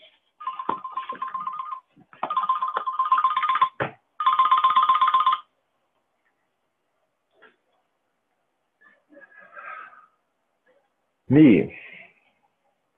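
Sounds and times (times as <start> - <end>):
mobile phone ringtone warbling: 0.4 - 5.5
speech: 11.3 - 11.8.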